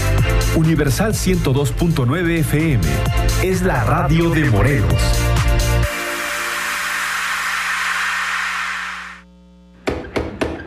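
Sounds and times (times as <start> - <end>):
speech: 0.6 - 5.9
steady rushing hiss: 5.9 - 9.2
sharp loud knocks on a door: 9.9 - 10.6.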